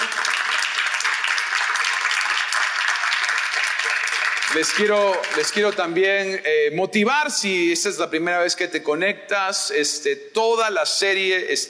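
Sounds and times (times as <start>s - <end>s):
audience applause: 0.0s - 6.0s
speech: 4.5s - 11.6s.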